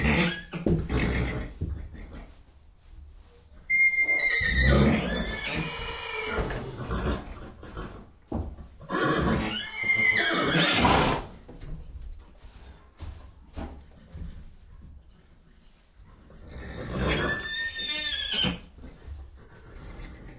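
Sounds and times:
horse whinnying: 0.0 - 1.5, 3.7 - 7.9, 8.8 - 11.3, 16.6 - 18.7.

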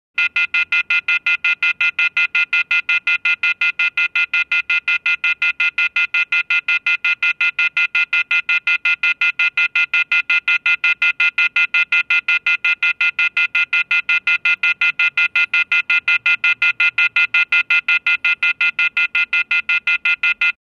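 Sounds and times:
short telephone beeps: 0.2 - 20.6.

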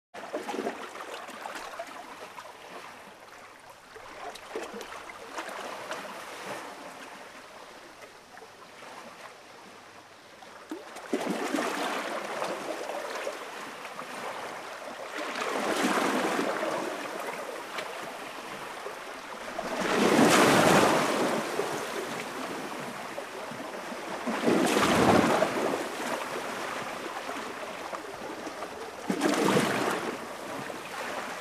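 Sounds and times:
light sea waves surfing on the coast: 0.2 - 31.3.

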